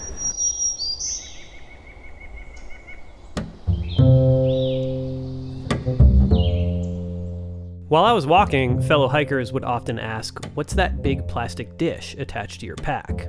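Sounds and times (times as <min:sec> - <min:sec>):
hooded warbler singing high clear whistled phrases: 0:00.0 - 0:08.1
soft woodland ambience: 0:00.0 - 0:13.2
warblers singing in a forest: 0:00.0 - 0:13.2
speech: 0:07.9 - 0:13.2.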